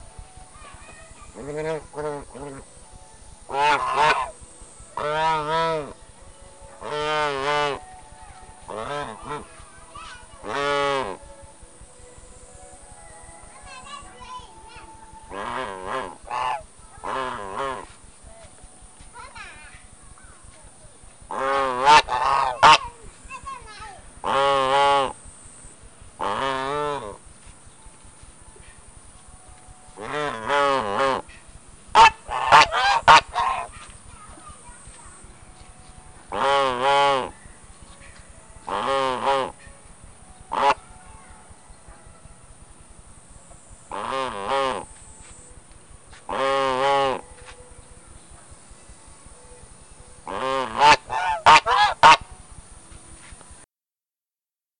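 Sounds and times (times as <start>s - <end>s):
duck: 3.5s - 4.4s, 5.0s - 6.0s, 6.8s - 7.8s, 8.7s - 9.5s, 10.4s - 11.2s, 15.3s - 17.9s, 21.3s - 23.0s, 24.2s - 25.2s, 26.2s - 27.2s, 30.0s - 33.8s, 36.3s - 37.4s, 38.0s - 39.7s, 40.5s - 40.8s, 43.9s - 44.9s, 46.3s - 47.2s, 50.3s - 52.3s.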